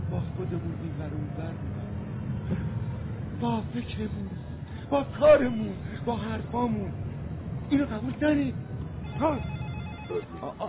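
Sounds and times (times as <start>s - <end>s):
speech: 0.2s - 2.8s, 3.4s - 7.0s, 7.7s - 10.6s
mobile phone ringing with a short melodic tone: 9.0s - 10.4s.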